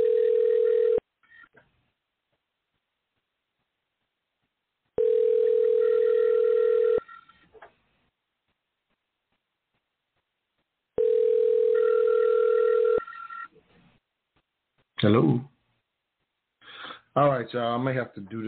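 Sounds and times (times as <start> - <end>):
electronic ringback tone of an outgoing phone call: 0.0 - 1.4, 5.0 - 7.4, 11.0 - 13.5
speech: 15.0 - 15.5, 17.2 - 18.4.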